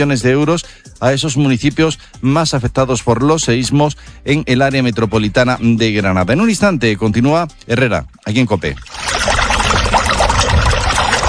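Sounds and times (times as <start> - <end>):
speech: 0.0 - 9.2
water pouring: 8.3 - 11.2.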